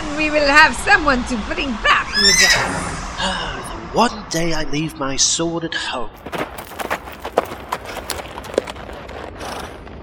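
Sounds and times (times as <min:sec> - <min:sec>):
speech: 0:00.2 - 0:06.6
soft rustling background: 0:06.2 - 0:09.8
horse hooves clip-clopping: 0:06.2 - 0:10.0.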